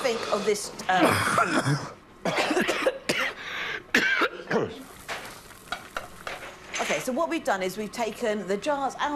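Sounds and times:
speech: 0.1 - 2.4, 7.2 - 9.1
person coughing from chilli fumes while making chilli sauce: 0.9 - 4.8
faint steady hiss: 4.7 - 9.1.

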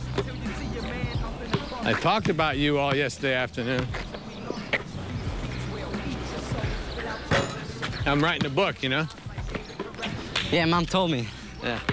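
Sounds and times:
basketball bouncing on pavement: 0.0 - 11.0, 11.6 - 11.9
low outdoor murmur: 0.0 - 11.9
speech: 1.9 - 4.1, 8.1 - 9.2, 10.5 - 11.9.

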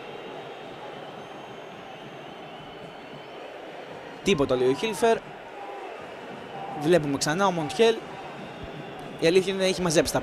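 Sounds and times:
stadium crowd booing and jeering: 0.0 - 10.2
speech: 4.2 - 5.3, 6.8 - 8.1, 9.2 - 10.2.

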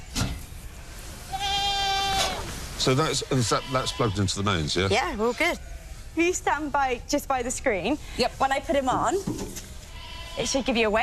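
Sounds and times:
rustle: 0.0 - 11.0
goat bleating on a weigh scale on a farm: 1.2 - 2.5, 3.3 - 4.6, 9.9 - 10.9
speech: 2.8 - 9.6, 10.4 - 11.0.

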